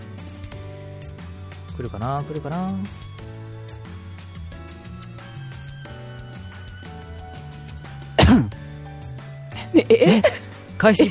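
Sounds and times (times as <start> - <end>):
speech: 1.8 - 3.2, 9.8 - 11.1
person coughing: 8.2 - 8.5
throat clearing: 8.2 - 8.5.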